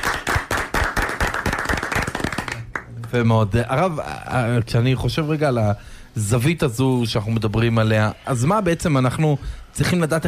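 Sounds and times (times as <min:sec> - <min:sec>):
hands clapping in applause: 0:00.0 - 0:03.2
speech: 0:03.1 - 0:10.2.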